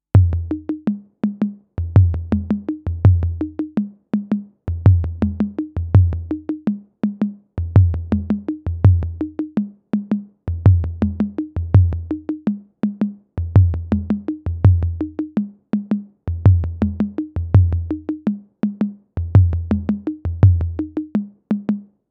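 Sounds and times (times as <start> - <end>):
Roland TR 808 drum machine toms loop: 0.2 - 21.8.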